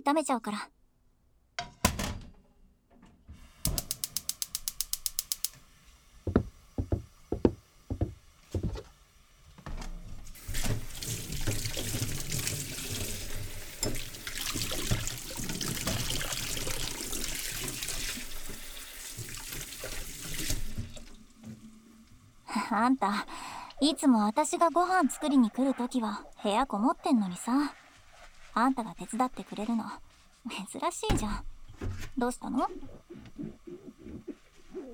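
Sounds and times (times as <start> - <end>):
speech: 0.0 - 0.8, 22.8 - 27.8, 28.6 - 33.6
kitchen sink tap gushing running water: 3.7 - 22.4
dishes clinking and rattling at a kitchen sink: 13.8 - 14.1.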